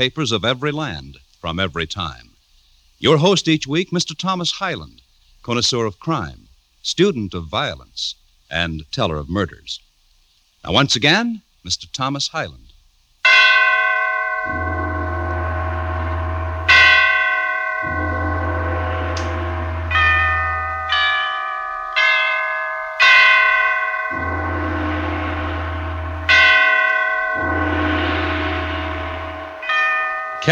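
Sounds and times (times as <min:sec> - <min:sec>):
speech: 0:00.0 - 0:02.3, 0:03.0 - 0:09.8, 0:10.6 - 0:12.6
great church bells tolling a requiem in St Petersburg: 0:13.3 - 0:30.4.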